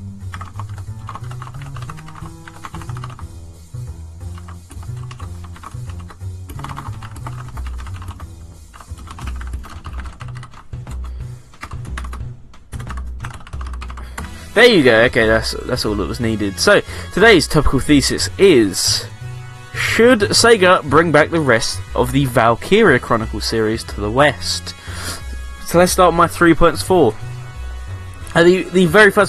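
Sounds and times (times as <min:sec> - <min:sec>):
typing on a computer keyboard: 0:00.3 - 0:03.2, 0:04.4 - 0:08.2, 0:08.8 - 0:14.3
speech: 0:14.6 - 0:19.1, 0:20.0 - 0:27.2, 0:28.4 - 0:29.2.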